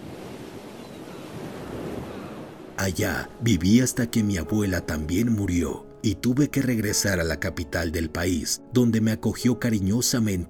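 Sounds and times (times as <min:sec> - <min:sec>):
ocean waves breaking on the shore: 0:00.0 - 0:04.7
speech: 0:02.8 - 0:10.4.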